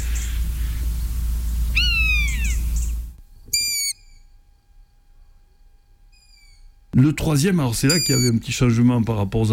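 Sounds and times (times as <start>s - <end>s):
common buzzard mewing call: 0.0s - 4.2s, 7.9s - 8.4s
steady low rumble: 0.0s - 7.8s
speech: 7.0s - 9.5s.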